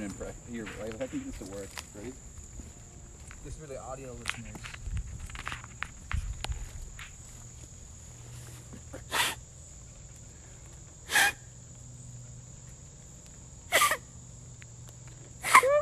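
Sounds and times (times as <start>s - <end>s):
speech: 0.0s - 2.4s, 3.4s - 5.0s
steady high insect-like hum: 0.0s - 15.8s
blade-of-grass whistle imitating a deer call: 9.1s - 9.4s, 11.1s - 11.5s, 13.7s - 14.1s, 15.4s - 15.8s.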